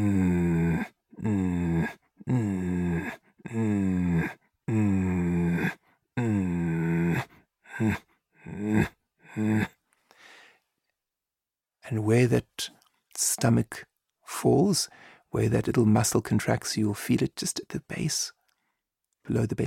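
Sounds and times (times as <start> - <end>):
person making growling breaths imitating a leopard's growl as a breathing exercise: 0.0 - 10.5
speech: 12.2 - 12.4, 13.4 - 18.4, 19.2 - 19.6.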